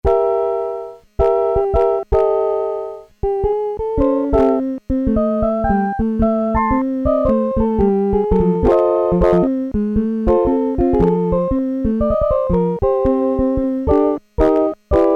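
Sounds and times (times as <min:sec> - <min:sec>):
Casio SK-1 electric piano harmonic component sound examples: 0:00.0 - 0:15.1.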